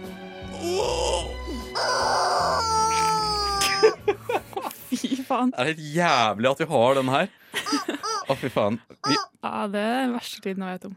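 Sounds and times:
squeezed rubber chicken toy squawking: 1.8s - 3.9s, 7.7s - 8.3s, 9.0s - 9.4s
laughter: 3.1s - 5.6s, 6.8s - 9.3s
speech: 5.3s - 10.9s.

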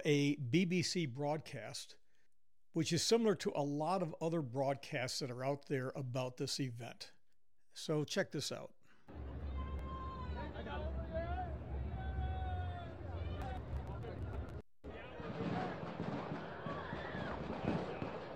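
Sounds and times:
speech: 0.0s - 2.0s, 2.8s - 7.2s, 7.8s - 9.3s
noisy crowd: 9.1s - 18.3s
rapid series of sharp gunshots from a shooting: 15.1s - 18.3s.

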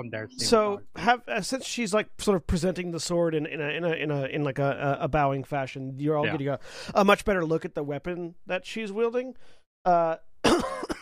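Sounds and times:
speech: 0.0s - 10.9s
throaty coughing: 10.4s - 11.0s.

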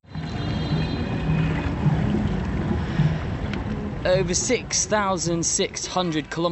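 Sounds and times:
low rumbling hum: 0.0s - 4.4s
wind around a boat: 0.0s - 6.5s
water washing around a sailing boat on the River Nile: 0.1s - 6.5s
speech: 4.0s - 6.5s.

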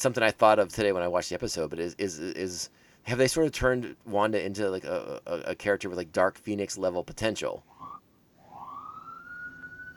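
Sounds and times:
speech: 0.0s - 7.7s
emergency vehicle siren wailing: 7.7s - 9.9s.

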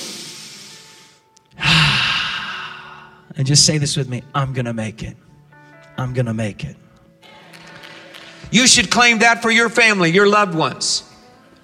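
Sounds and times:
person taking a deep breath: 0.0s - 3.3s
speech: 3.4s - 5.3s, 6.0s - 6.8s, 8.5s - 11.1s.

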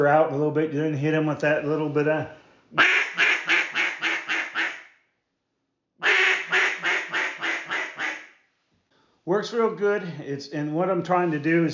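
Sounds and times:
speech: 0.0s - 3.0s, 9.3s - 11.7s
duck call imitating the cadence of a hen duck: 2.8s - 4.9s, 6.0s - 8.3s.

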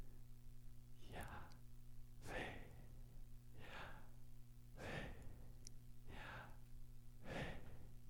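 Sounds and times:
low steady hum: 0.0s - 8.0s
exaggerated breathing in and out close to the microphone: 2.2s - 3.0s, 3.6s - 4.2s, 4.8s - 8.0s.

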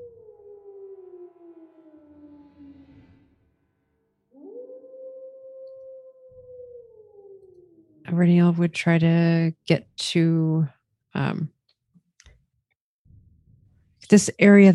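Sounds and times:
faint wolf howling in the hills: 0.0s - 3.4s, 4.3s - 8.1s
speech: 8.1s - 11.6s, 14.1s - 14.7s.

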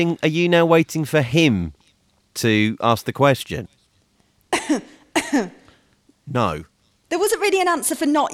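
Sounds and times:
speech: 0.0s - 1.8s, 2.4s - 3.8s, 4.6s - 5.6s, 6.3s - 8.3s
person coughing: 4.5s - 5.8s.

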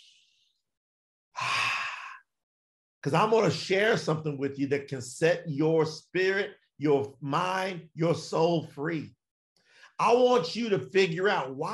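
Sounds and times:
person taking a deep breath: 1.4s - 2.2s
speech: 3.0s - 9.2s, 10.0s - 11.7s.

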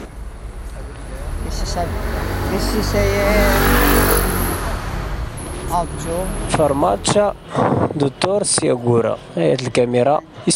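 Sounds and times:
car engine revving: 0.0s - 7.9s
busy street traffic: 0.0s - 10.5s
speech: 1.5s - 3.9s, 5.7s - 10.5s.

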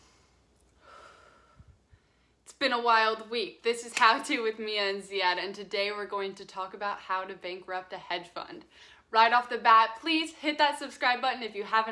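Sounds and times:
deep breath: 0.0s - 2.4s, 8.7s - 9.1s
speech: 2.6s - 11.9s.

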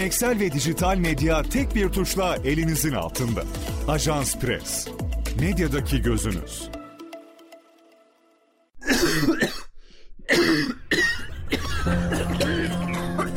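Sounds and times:
speech: 0.0s - 6.8s
harsh loud coughing fits: 8.8s - 13.3s.

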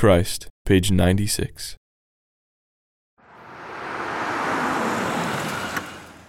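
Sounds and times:
speech: 0.0s - 1.8s
car pulling into the driveway next door: 3.2s - 6.2s.

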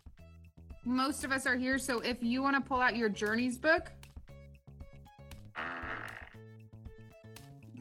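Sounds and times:
speech: 0.8s - 4.0s
raspy fart-like blasts from a classroom prank: 5.5s - 6.4s.

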